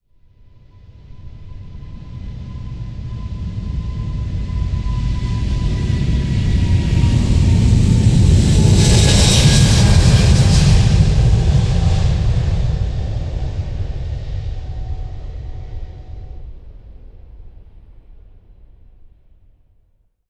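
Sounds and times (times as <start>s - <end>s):
passenger plane taking off from runway: 0.4s - 19.8s.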